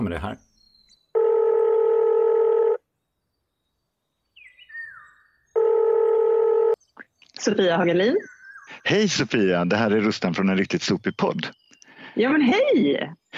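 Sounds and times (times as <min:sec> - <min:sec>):
speech: 0:00.1 - 0:00.5, 0:07.4 - 0:11.6, 0:12.2 - 0:13.3
phone line ringing with long steady electronic tones: 0:01.1 - 0:02.8, 0:05.5 - 0:06.8.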